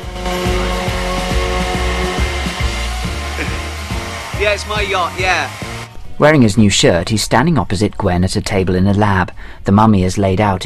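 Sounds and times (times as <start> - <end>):
hair dryer blowing: 0.0 - 5.9
low thumping beat: 0.0 - 5.9
speech: 4.4 - 5.6, 6.2 - 10.6.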